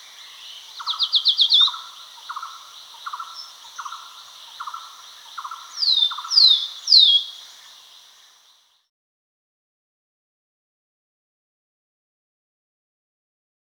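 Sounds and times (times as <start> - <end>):
Great iora chattering with buzzy pulsed notes and falling whistles: 0.0 - 8.5.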